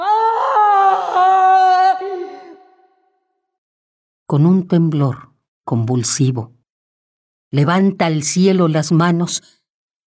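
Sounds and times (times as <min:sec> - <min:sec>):
woman on a scaffold screaming in anguish: 0:00.0 - 0:02.7
speech: 0:04.3 - 0:06.6, 0:07.5 - 0:09.6.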